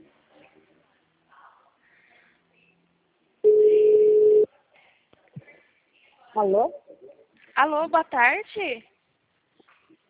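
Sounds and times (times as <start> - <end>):
telephone ringing tone while a call connects: 3.4 - 4.5
speech: 6.4 - 6.8, 7.6 - 8.9.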